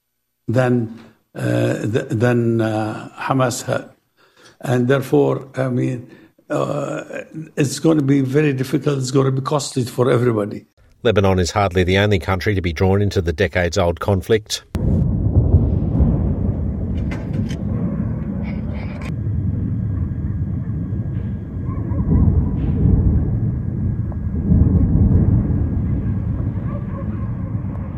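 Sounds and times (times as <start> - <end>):
speech: 0.5 - 4.0, 4.6 - 15.0
explosions from airstrikes rumbling: 14.7 - 27.9
sharp crackling bursts: 14.7 - 27.9.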